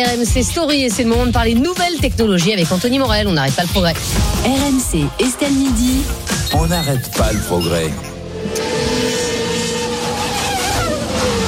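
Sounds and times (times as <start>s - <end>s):
speech: 0.0s - 8.6s
autonomous race car engines whining: 6.6s - 11.4s.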